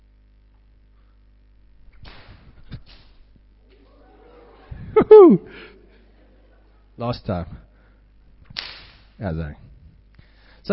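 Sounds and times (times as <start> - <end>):
sharp whip crack with a ringing tail: 1.9 - 3.3, 8.5 - 9.2
laughter: 3.7 - 6.9
person giving a short voiced exclamation: 4.9 - 5.8
speech: 5.2 - 5.8, 7.0 - 7.7, 9.2 - 9.7.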